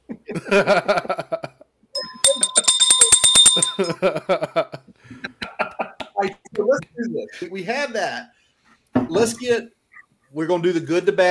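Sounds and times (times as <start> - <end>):
people chuckling: 0.0 - 1.6, 3.8 - 6.1
speech: 0.4 - 1.4, 3.8 - 4.4, 7.6 - 8.4, 9.2 - 9.7, 10.4 - 11.3
hand bell ringing: 2.0 - 4.0.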